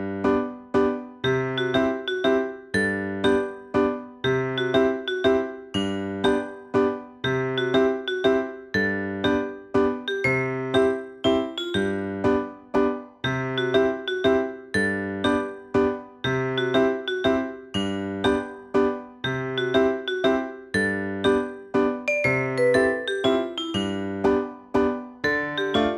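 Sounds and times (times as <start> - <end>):
daytime background music: 0.2 - 25.9.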